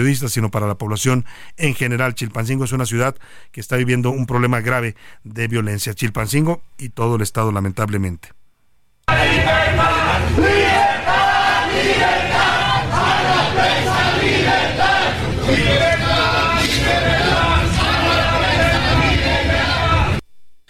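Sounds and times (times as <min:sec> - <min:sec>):
speech: 0:00.0 - 0:08.4
crowd of protesters chanting and shouting slogans in Chilpancingo Guerrero Mexico: 0:09.1 - 0:20.2.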